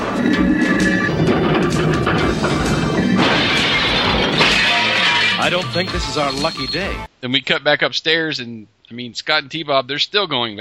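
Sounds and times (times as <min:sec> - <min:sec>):
game spinning wheel crashing into slot machines: 0:01.0 - 0:05.5
speech: 0:05.5 - 0:10.6.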